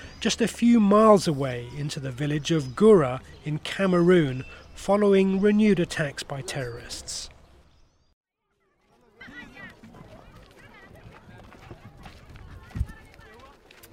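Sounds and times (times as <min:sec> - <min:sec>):
speech: 0:00.2 - 0:07.3
donkey hooves clip-clopping: 0:08.8 - 0:13.9.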